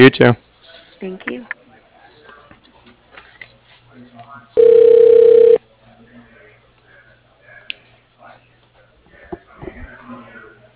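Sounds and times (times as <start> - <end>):
speech: 0.0 - 0.4, 1.0 - 1.6
people talking over a narrow phone line: 4.6 - 5.6
steady telephone tone over a narrow phone line during voicemail transfer: 4.6 - 5.6.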